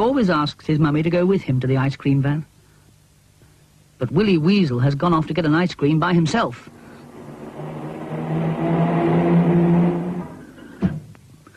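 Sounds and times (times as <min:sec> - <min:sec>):
speech: 0:00.0 - 0:02.5, 0:04.0 - 0:06.8
car driving past: 0:06.5 - 0:10.9.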